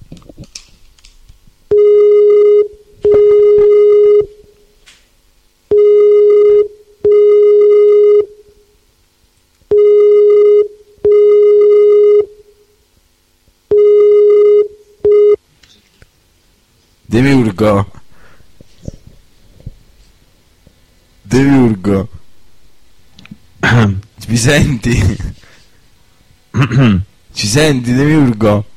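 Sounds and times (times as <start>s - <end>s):
ringing tone of an outgoing video call: 1.7s - 4.5s, 5.7s - 8.4s, 9.7s - 12.4s, 13.7s - 15.4s
speech: 17.2s - 18.0s, 21.4s - 22.1s, 24.4s - 25.3s, 26.6s - 28.7s.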